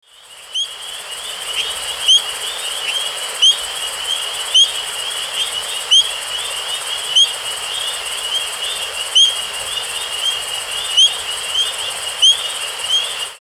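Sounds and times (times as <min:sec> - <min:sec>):
Boophis sibilans frog: 0:00.1 - 0:13.4.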